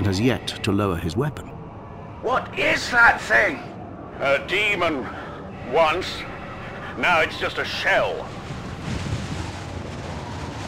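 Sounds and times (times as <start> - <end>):
speech: 0.1 - 1.5, 2.2 - 6.3, 7.0 - 8.4
strong gust of wind over the ruins of a tower: 3.7 - 10.6.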